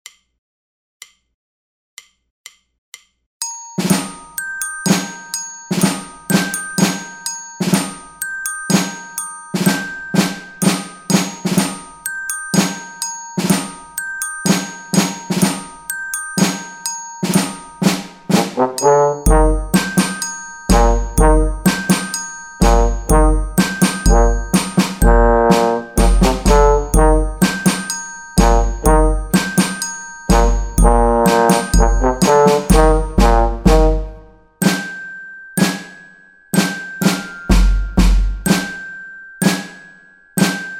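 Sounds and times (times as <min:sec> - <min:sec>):
percussion: 0:03.4 - 0:40.7
rock trombone: 0:18.3 - 0:20.0, 0:20.7 - 0:21.6, 0:22.6 - 0:27.7, 0:28.4 - 0:29.3, 0:30.3 - 0:34.3.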